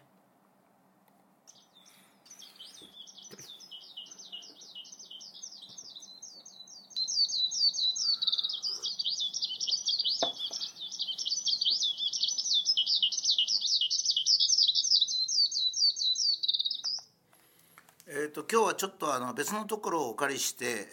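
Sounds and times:
skylark singing in rapid warbling trills and chirps: 1.5 - 17.1
speech: 18.5 - 20.9.

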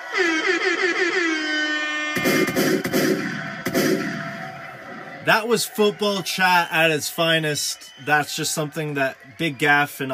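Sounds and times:
air horn blasts: 0.0 - 3.4
sharp bangs: 2.2 - 5.1
speech: 5.3 - 10.1.

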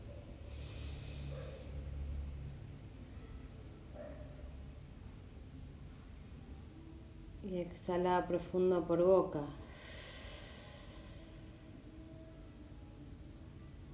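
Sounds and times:
slow deep inhale through the nose during a guided relaxation breathing exercise: 0.4 - 1.8, 9.6 - 11.6
speech: 7.5 - 9.6.

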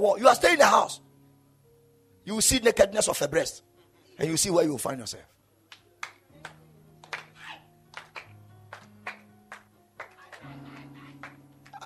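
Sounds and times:
speech: 0.0 - 1.0, 2.3 - 5.4
audience clapping hands: 5.7 - 11.8.

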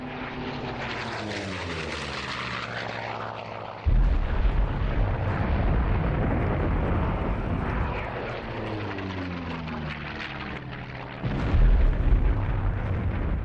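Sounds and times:
fighter jet engine whining pass: 0.0 - 13.4
napalm bombing explosions from fighter jets: 3.8 - 8.7, 11.2 - 13.4.

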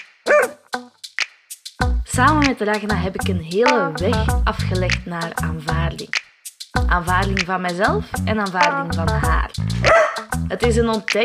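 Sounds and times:
dog barking in sharp high yips: 0.3 - 0.6, 9.9 - 10.3
speech: 2.2 - 6.2, 6.9 - 11.2.

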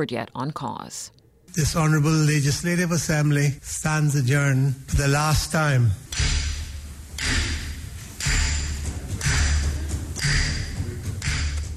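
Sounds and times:
speech: 0.0 - 6.4
Speaker of the House's gavel striking its wooden block: 6.1 - 11.7.

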